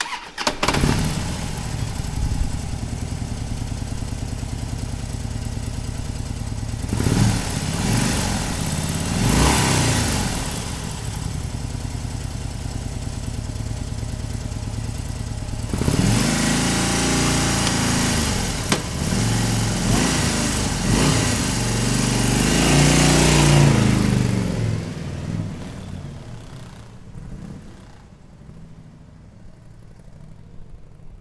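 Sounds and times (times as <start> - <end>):
Harley Davidson motorbike: 0.0 - 31.2.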